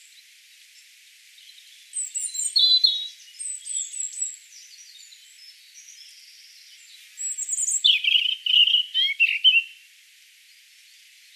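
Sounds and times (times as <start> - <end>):
European robin Erithacus rubecula singing: 1.4 - 9.8.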